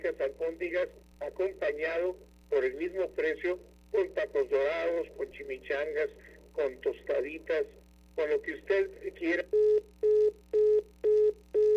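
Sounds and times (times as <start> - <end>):
speech: 0.0 - 11.7
telephone busy tone after a dropped call: 9.6 - 11.7.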